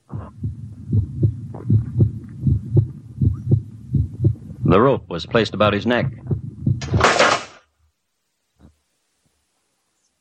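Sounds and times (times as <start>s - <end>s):
heavy pounding heartbeat: 0.0s - 4.8s, 5.9s - 7.1s
low hum: 0.0s - 7.1s
speech: 4.7s - 6.2s.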